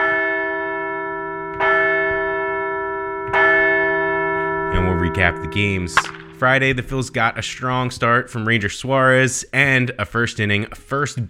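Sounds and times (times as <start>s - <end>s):
large deep bell ringing: 0.0s - 8.7s
speech: 5.1s - 11.2s.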